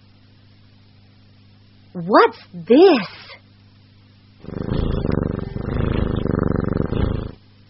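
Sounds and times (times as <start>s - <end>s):
speech: 1.9s - 3.2s
cat purring: 4.4s - 7.4s.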